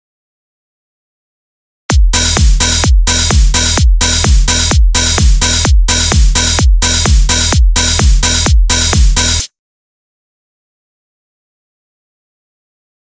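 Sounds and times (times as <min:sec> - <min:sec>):
drums playing: 0:01.9 - 0:09.5.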